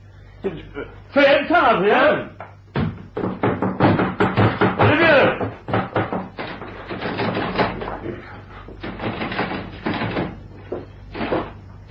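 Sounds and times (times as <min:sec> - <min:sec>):
speech: 0:00.4 - 0:02.4
knocking on a door bolted on the inside: 0:02.7 - 0:11.6.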